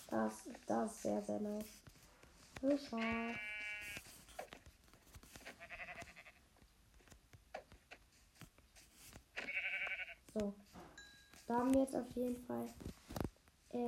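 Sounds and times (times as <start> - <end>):
soft rustling: 0.0 - 13.8
speech: 0.4 - 1.9, 2.6 - 3.5, 10.4 - 10.6, 11.5 - 13.0
sheep bleating: 3.0 - 4.1, 5.6 - 6.4, 9.4 - 10.2.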